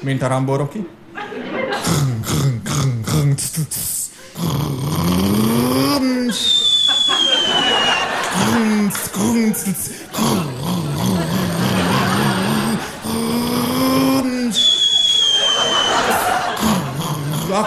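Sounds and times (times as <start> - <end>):
speech: 0.0 - 1.0, 3.3 - 7.3, 8.4 - 10.5
laughter: 1.1 - 2.4, 5.8 - 17.6
voice imitating a Rába Turbo truck pulling away and accelerating: 1.8 - 6.5, 8.2 - 14.6, 16.5 - 17.6.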